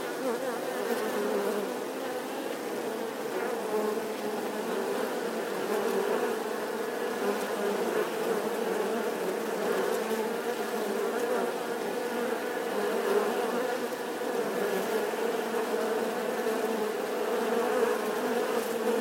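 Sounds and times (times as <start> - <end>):
honey bee swarm buzzing outside the hive: 0.0 - 18.9.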